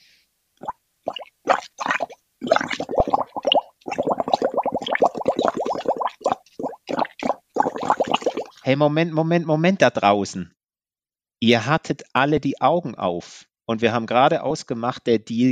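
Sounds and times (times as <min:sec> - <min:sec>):
blowing bubbles through a straw into a drink: 0:00.6 - 0:08.6
speech: 0:08.7 - 0:10.6, 0:11.4 - 0:15.5.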